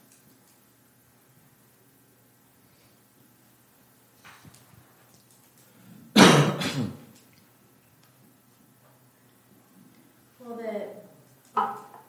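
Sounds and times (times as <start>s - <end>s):
loud cough with throat-clearing rasp: 6.2s - 7.1s.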